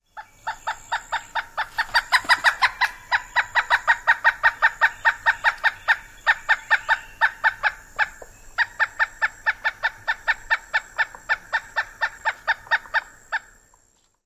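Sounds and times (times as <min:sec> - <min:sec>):
pileated woodpecker long call: 0:00.0 - 0:13.7.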